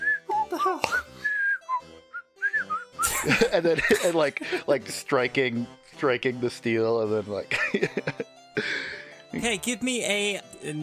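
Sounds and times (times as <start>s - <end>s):
person whistling a tune: 0.0s - 3.1s
speech: 0.6s - 1.1s, 3.2s - 8.3s, 9.4s - 10.8s
laughter: 3.0s - 4.9s, 7.4s - 8.8s.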